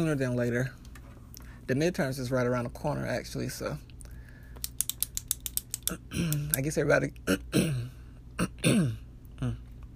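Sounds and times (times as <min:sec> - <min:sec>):
speech: 0:00.0 - 0:00.8, 0:01.7 - 0:03.9, 0:05.9 - 0:07.8
throat clearing: 0:07.3 - 0:09.7.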